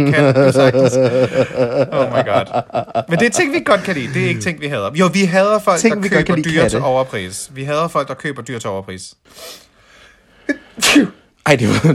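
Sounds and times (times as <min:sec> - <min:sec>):
laughter: 0:00.0 - 0:04.6
speech: 0:00.0 - 0:09.6, 0:10.5 - 0:11.9
person sneezing into their arm: 0:10.5 - 0:11.4.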